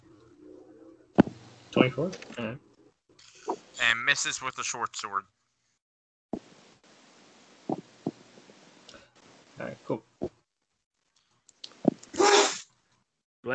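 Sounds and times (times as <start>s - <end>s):
speech: 1.8s - 2.7s, 3.8s - 5.4s, 9.6s - 10.4s
person sneezing: 12.2s - 12.6s.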